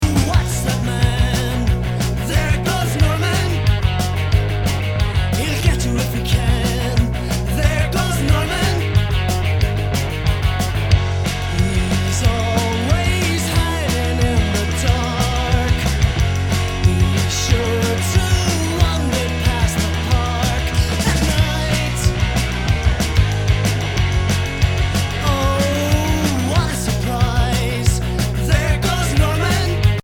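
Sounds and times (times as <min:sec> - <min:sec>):
undertones: 0:00.0 - 0:30.0.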